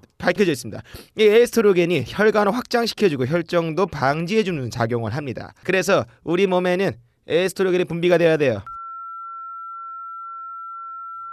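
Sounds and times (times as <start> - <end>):
speech: 0.2 - 8.7
steady sine-wave frequency tone: 8.7 - 11.3.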